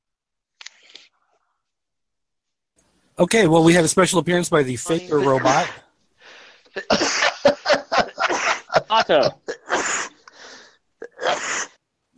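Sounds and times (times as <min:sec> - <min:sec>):
speech: 0:03.2 - 0:05.8, 0:06.8 - 0:07.2, 0:09.0 - 0:09.5
laughter: 0:04.9 - 0:05.9, 0:06.7 - 0:10.3
sneezing fit: 0:09.5 - 0:10.2, 0:11.0 - 0:12.1.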